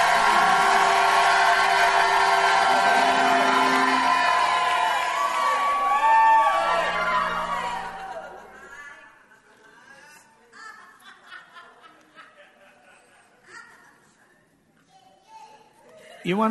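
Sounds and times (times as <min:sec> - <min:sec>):
crowd shouting and cheering: 0:00.0 - 0:08.8
laughter: 0:06.5 - 0:13.8
speech: 0:16.3 - 0:16.4.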